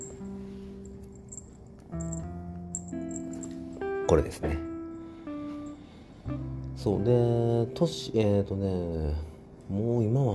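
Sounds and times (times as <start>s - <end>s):
small bell jingling on a young black pet: 0.0s - 4.1s
speech: 4.1s - 4.7s, 6.8s - 10.3s.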